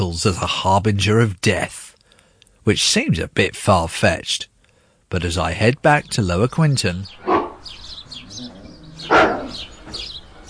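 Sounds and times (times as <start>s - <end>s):
speech: 0.1s - 1.8s, 2.6s - 4.5s, 5.1s - 7.3s
small birds chirping and twittering outdoors: 4.6s - 10.4s
dog barking: 7.2s - 7.6s, 9.0s - 10.0s.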